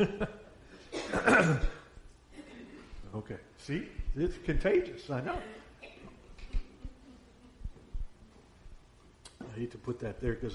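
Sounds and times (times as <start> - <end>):
speech: 0.0 - 0.4, 1.2 - 1.8, 3.1 - 5.6, 9.6 - 10.5
speaker clearing throat before leading a prayer: 0.9 - 1.9.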